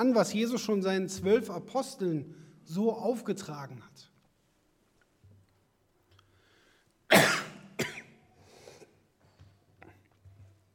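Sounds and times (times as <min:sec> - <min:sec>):
speech: 0:00.0 - 0:04.1
person coughing sharply: 0:07.1 - 0:09.0.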